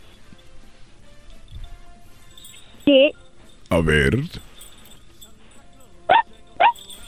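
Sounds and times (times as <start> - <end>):
speech: 3.7 - 4.5
person imitating a female dog barking: 6.1 - 6.8.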